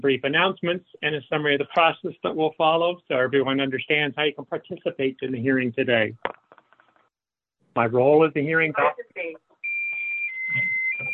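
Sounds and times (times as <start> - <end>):
speech: 0.0 - 6.4, 7.8 - 9.4, 10.5 - 10.8
alarm beeping set off by a pressed button: 9.6 - 11.1.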